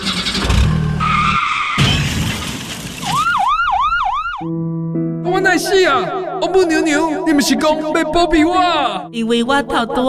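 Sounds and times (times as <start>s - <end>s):
skidding car tyres screeching: 0.0s - 2.2s
car engine pulling away: 0.0s - 3.0s
warbling siren: 3.0s - 4.6s
speech: 5.4s - 10.0s.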